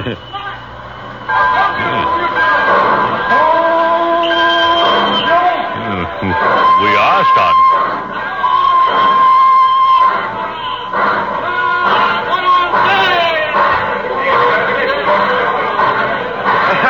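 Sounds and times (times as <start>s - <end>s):
bursts of laughter: 0.0s - 0.3s, 5.8s - 6.6s, 16.5s - 16.8s
cheerful crowd chatter at a train station at Christmas: 0.0s - 16.8s
speech: 0.1s - 0.4s, 1.3s - 2.2s, 7.2s - 7.7s.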